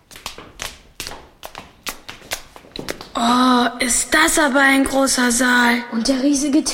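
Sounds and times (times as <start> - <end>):
footsteps climbing stairs: 0.0 - 3.3
speech: 3.2 - 6.7.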